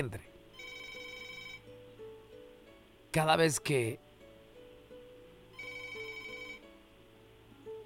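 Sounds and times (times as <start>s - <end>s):
speech: 0.0s - 0.7s, 3.1s - 4.0s
melodic telephone ringtone with repeating electronic tones: 0.5s - 1.7s, 5.6s - 6.7s.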